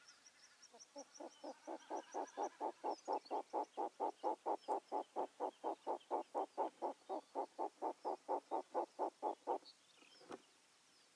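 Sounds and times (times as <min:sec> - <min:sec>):
short-eared owl Asio flammeus calling in Ladakh: 0:01.0 - 0:09.6.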